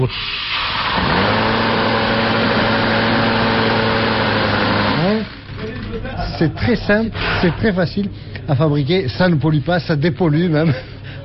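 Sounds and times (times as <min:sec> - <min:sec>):
speech: 0:00.0 - 0:00.4, 0:06.4 - 0:10.9
small vane motor spinning at high speed: 0:00.6 - 0:05.4.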